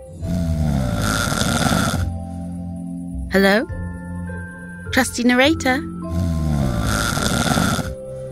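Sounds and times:
loud rattling nasal snore: 0.0 - 2.3, 6.0 - 8.0
speech: 3.4 - 3.8, 5.0 - 6.0.

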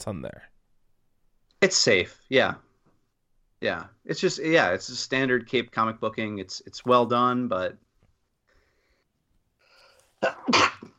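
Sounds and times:
speech: 0.0 - 0.6, 1.6 - 2.7, 3.6 - 7.8, 10.2 - 10.8
loud sneeze: 10.2 - 10.9.

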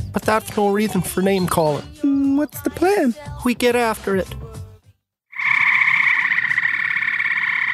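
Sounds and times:
speech: 0.2 - 4.4
frog croaking in a long buzzing trill: 5.3 - 7.7.

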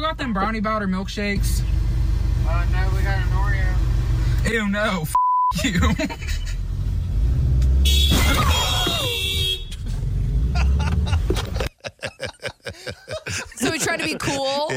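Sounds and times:
car engine roaring driving off from a drive-thru: 0.0 - 11.7
road noise: 0.0 - 14.7
speech: 0.1 - 1.8, 2.4 - 6.6, 14.0 - 14.7
laughter: 5.5 - 6.6, 10.5 - 14.7
car horn blaring: 7.8 - 9.9
car crashing into another car: 7.9 - 10.1.

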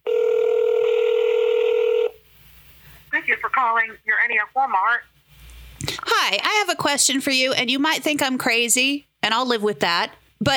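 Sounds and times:
steady loud electronic telephone line beep: 0.0 - 2.1
faint hiss: 0.1 - 10.5
speech: 3.6 - 5.2, 6.1 - 10.5.

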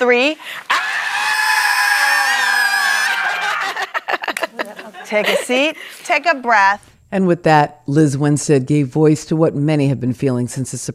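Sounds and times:
speech: 0.0 - 0.8, 5.1 - 10.9
laughter: 0.4 - 1.4, 2.0 - 6.0
large standing audience screaming loudly together: 0.7 - 3.8.

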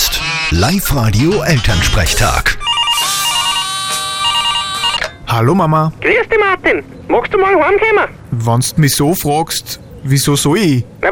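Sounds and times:
telephone ringing with an electronic trill: 0.0 - 5.4
speech: 0.5 - 2.6, 5.3 - 11.1.

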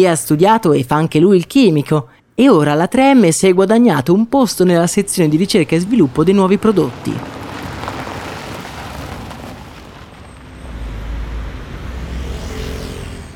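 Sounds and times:
speech: 0.0 - 7.4
car driving with road roar and engine rumble: 4.4 - 13.3.

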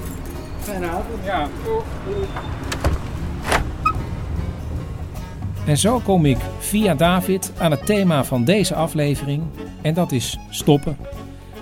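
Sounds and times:
speech: 0.7 - 2.9, 5.6 - 11.6
low rumbling background: 1.1 - 7.6
door swinging shut with a solid thud: 2.4 - 4.0.

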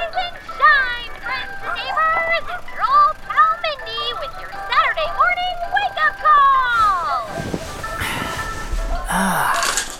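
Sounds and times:
tinkly ice cream truck jingle: 0.0 - 7.3
gasp-like vocal sound: 8.0 - 9.8.

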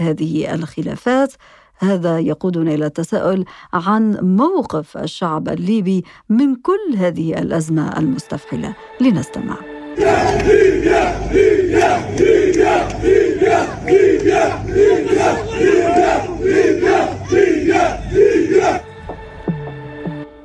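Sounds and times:
speech: 0.0 - 18.8
large street protest crowd chanting in unison outdoors: 10.0 - 19.2.

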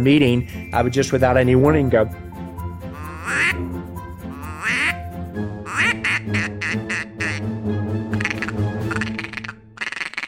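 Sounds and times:
speech: 0.0 - 2.2
duck call imitating mallard calls and feeding: 3.0 - 3.6, 4.3 - 5.0, 5.7 - 7.4, 8.1 - 10.2.

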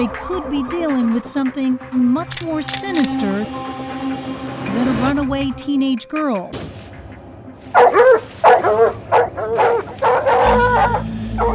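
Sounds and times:
speech: 0.0 - 4.1, 4.8 - 6.7
cadaver dogs barking and yipping while searching a backyard: 7.7 - 11.5.

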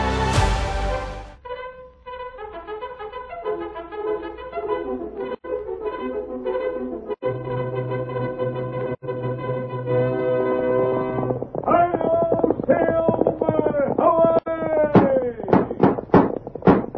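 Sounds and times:
brassy orchestral music: 0.0 - 11.3
horse hoofbeats galloping: 10.0 - 16.9.

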